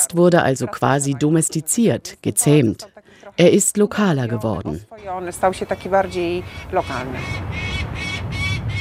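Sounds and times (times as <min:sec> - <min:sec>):
speech: 0:00.0 - 0:07.6
falcon screeching while circling a palace tower in Warsaw: 0:05.7 - 0:08.7.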